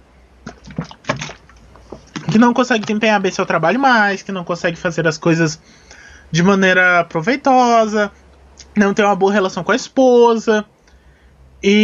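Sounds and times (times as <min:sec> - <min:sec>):
person taking a sip of water with soft wet gulps: 0:00.4 - 0:03.2
small handling noises: 0:00.4 - 0:04.3
speech: 0:02.3 - 0:08.2, 0:08.8 - 0:10.7, 0:11.6 - 0:11.8.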